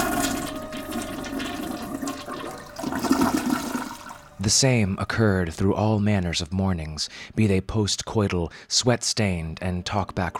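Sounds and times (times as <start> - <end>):
toilet flushing and tank refilling: 0.0 - 4.4
speech: 4.4 - 10.3.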